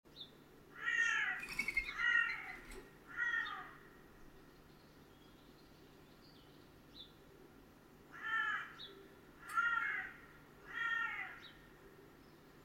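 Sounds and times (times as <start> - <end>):
Corvus corone carrion crow cawing: 0.8 - 4.0, 8.1 - 8.8, 9.4 - 11.7.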